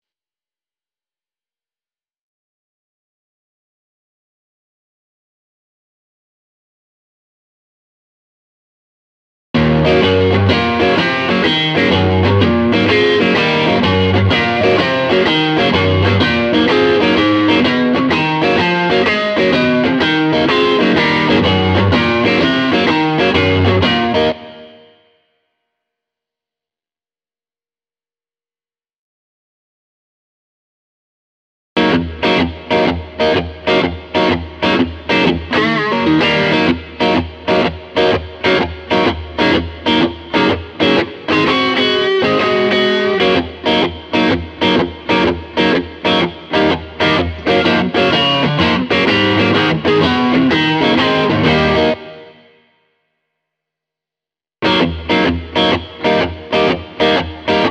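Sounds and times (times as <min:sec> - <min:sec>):
smooth rhythm guitar: 0:09.6 - 0:24.9, 0:31.8 - 0:52.6, 0:54.6 - 0:57.6.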